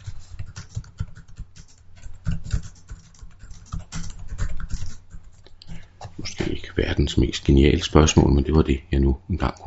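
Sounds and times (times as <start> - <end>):
typing on a computer keyboard: 0.3 - 5.5
speech: 6.8 - 9.6.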